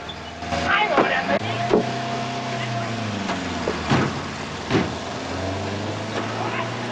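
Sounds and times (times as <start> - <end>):
car engine humming and revving as the car drives off: 0.0 - 6.9
bumps and clunks of a car driving off: 0.4 - 6.6.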